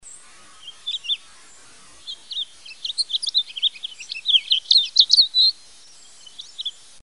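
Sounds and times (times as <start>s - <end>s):
house finch singing: 0.0s - 6.9s.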